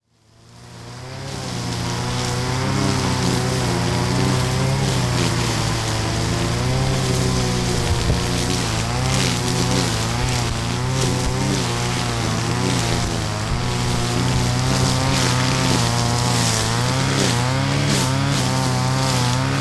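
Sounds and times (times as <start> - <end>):
tree being cut: 0.0 - 19.5.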